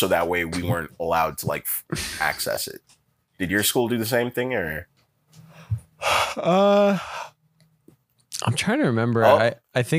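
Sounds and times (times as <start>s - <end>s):
speech: 0.0s - 4.9s, 5.7s - 7.3s, 8.4s - 9.9s
person yawning into a microphone: 6.0s - 7.3s.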